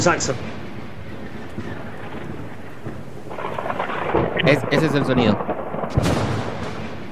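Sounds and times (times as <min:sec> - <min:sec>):
speech: 0:00.0 - 0:00.6, 0:04.5 - 0:06.2
rolling rumble of thunder: 0:00.0 - 0:07.0
steady rain hiss: 0:00.0 - 0:07.0.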